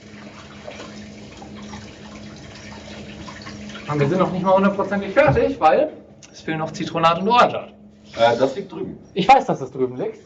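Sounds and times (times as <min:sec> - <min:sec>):
running tap water washing sticky dough off hands: 0:00.0 - 0:05.6
speech: 0:03.9 - 0:10.2.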